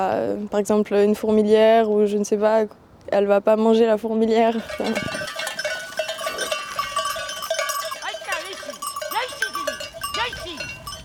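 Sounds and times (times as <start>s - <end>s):
speech: 0.0s - 5.2s
Rove goat herd bells clanking: 4.4s - 11.0s.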